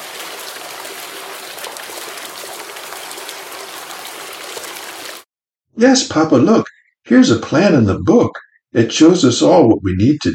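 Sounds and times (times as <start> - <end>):
flowing river water rushing: 0.0 - 5.3
speech: 5.8 - 10.3.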